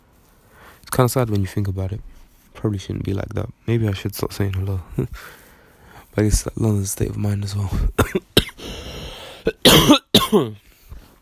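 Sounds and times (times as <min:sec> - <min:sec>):
speech: 0:00.9 - 0:05.4, 0:06.1 - 0:08.3, 0:09.7 - 0:10.7
harsh rasping coughs: 0:07.8 - 0:10.6.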